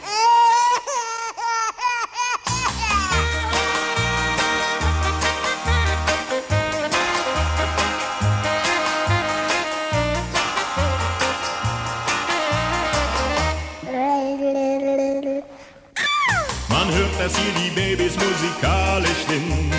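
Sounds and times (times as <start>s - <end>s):
baby in a cradle crying: 0.0s - 3.6s, 13.8s - 16.6s
full band music with a thumping bass line: 2.6s - 13.8s, 16.4s - 19.7s.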